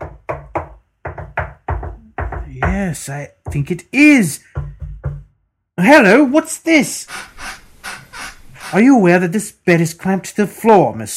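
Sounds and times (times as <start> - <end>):
dull solid knocks on a wall testing for trap doors: 0.0 - 3.7, 4.5 - 5.3
speech: 2.6 - 4.6, 5.8 - 7.5, 8.7 - 11.1.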